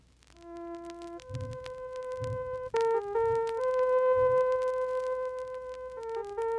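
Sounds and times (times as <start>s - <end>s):
soft low thumps: 0.8s - 6.4s
organ-like synthesized tone melody: 1.2s - 4.8s.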